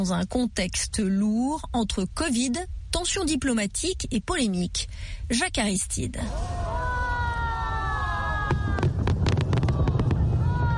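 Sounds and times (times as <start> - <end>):
speech: 0.0 - 6.6
fireworks exploding at stadium opening ceremony: 6.3 - 10.7
rumble like a large open-air crowd: 6.3 - 10.7.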